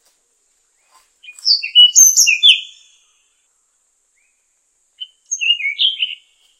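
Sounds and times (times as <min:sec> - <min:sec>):
Tanahjampea Blue Flycatcher song of high thin whistled notes: 0:01.2 - 0:03.0, 0:05.0 - 0:06.4.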